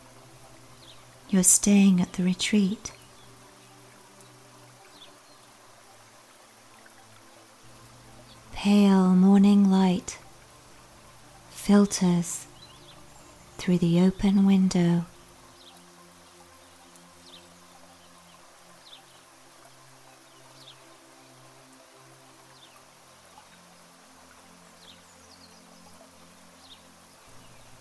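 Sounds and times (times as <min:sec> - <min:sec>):
low hum: 0:00.0 - 0:03.7, 0:07.6 - 0:15.6
gentle rain falling outside at a retreat: 0:00.0 - 0:27.7
speech: 0:01.3 - 0:03.0, 0:08.6 - 0:10.2, 0:11.7 - 0:12.5, 0:13.6 - 0:15.1.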